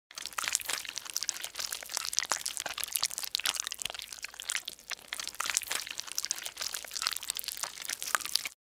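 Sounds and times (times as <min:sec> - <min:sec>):
cartoon slime bubbling with wet gloop movement: 0:00.0 - 0:08.6.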